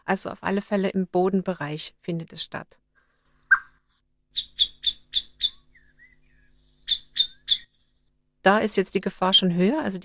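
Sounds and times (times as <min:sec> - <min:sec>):
speech: 0:00.1 - 0:02.8, 0:08.4 - 0:10.0
common blackbird alarm calls: 0:03.5 - 0:08.1.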